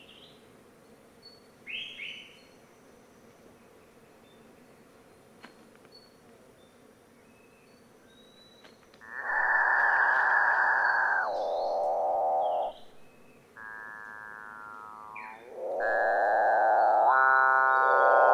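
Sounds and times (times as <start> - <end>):
Capuchinbird calling with mooing harmonic drones: 9.0 - 13.0, 13.6 - 18.3.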